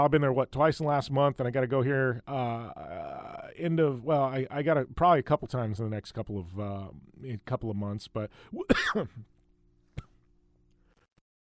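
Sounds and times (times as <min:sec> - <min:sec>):
speech: 0:00.0 - 0:09.4
person coughing: 0:08.6 - 0:09.3
throat clearing: 0:08.6 - 0:09.3.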